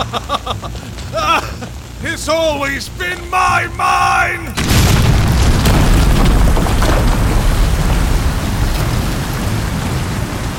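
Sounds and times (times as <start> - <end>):
laughter: 0.0 - 1.8
speech: 0.0 - 5.2
heavy torrent of water crashing down from a great height: 1.1 - 10.5.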